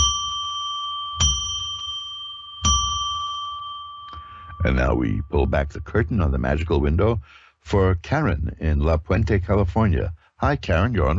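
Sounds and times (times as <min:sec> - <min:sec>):
bell struck with clear bright tones: 0:00.0 - 0:06.3
speech: 0:04.6 - 0:11.1.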